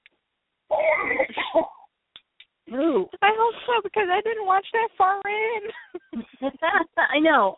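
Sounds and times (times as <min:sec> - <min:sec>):
rough throat-clearing cough: 0:00.7 - 0:01.9
speech: 0:03.0 - 0:07.5.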